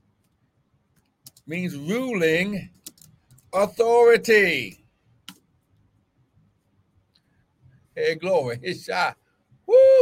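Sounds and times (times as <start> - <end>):
low room hum: 0.0 - 10.0
keyboard typing: 1.0 - 1.5, 2.7 - 3.5
speech: 1.5 - 2.8, 3.5 - 4.8, 8.0 - 9.2.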